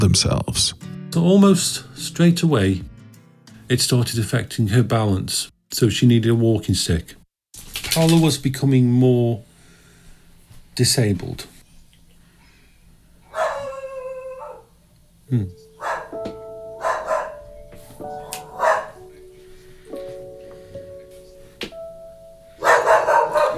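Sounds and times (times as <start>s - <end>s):
speech: 0.0s - 2.9s, 3.7s - 7.2s, 7.8s - 9.5s, 10.8s - 11.5s, 15.3s - 15.6s
dog barking and yelping: 13.3s - 14.7s, 15.8s - 16.2s, 16.8s - 17.5s, 18.4s - 19.0s, 22.6s - 23.5s.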